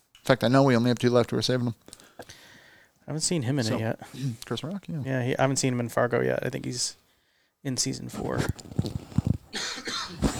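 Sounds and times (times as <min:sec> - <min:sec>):
speech: 0:00.3 - 0:02.3, 0:03.1 - 0:07.0, 0:07.6 - 0:09.0
person coughing: 0:09.6 - 0:10.3.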